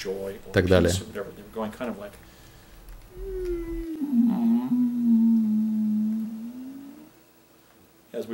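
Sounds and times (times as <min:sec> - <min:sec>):
speech: 0:00.0 - 0:02.3, 0:08.2 - 0:08.3
deep whale-like mooing call from a herd animal being petted: 0:03.1 - 0:07.2.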